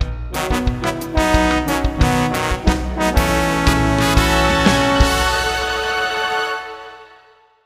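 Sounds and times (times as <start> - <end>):
fanfare jingle: 0.1 - 7.5.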